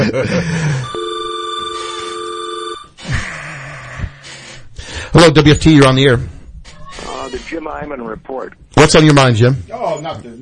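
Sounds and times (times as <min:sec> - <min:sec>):
speech: 0:00.1 - 0:01.0, 0:05.2 - 0:06.4, 0:07.3 - 0:10.4
telephone ringing with an incoming call: 0:00.8 - 0:02.9.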